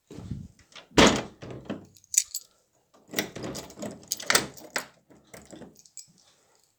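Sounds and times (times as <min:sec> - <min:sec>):
metal key in a lock: 0:01.6 - 0:02.5, 0:03.1 - 0:06.1.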